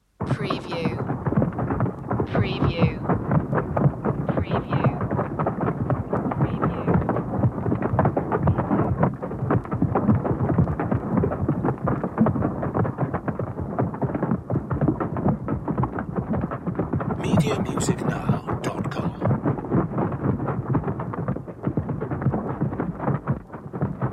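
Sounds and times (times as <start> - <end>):
rhinoceros herd hooves: 0.9 - 24.1.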